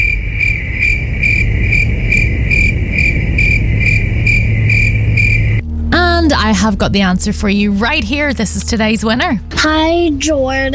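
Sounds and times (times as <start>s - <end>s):
crickets chirping: 0.0s - 5.7s
speech: 6.5s - 10.7s.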